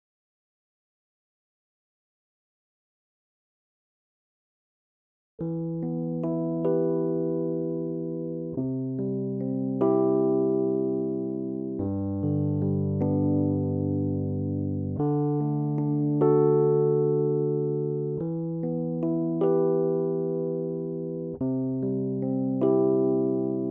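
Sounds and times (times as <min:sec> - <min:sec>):
Rhodes electric piano: 0:05.4 - 0:23.6.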